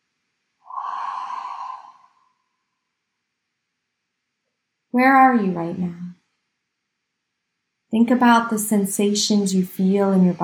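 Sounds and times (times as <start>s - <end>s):
one long deep breath: 0.7s - 2.4s
speech: 4.9s - 6.0s, 8.0s - 10.4s.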